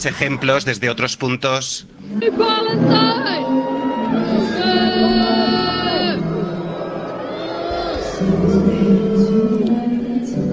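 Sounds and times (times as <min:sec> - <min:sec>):
speech: 0:00.0 - 0:05.7
large crowd booing in protest: 0:02.0 - 0:10.5
overlapping voices shouting in protest: 0:02.2 - 0:08.9.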